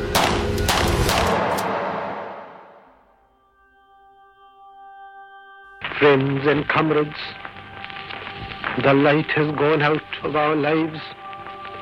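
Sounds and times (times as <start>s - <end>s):
gunshots fired at close range: 0.0s - 2.9s
low sustained musical drone: 0.0s - 11.8s
speech: 6.0s - 7.5s, 8.8s - 11.2s.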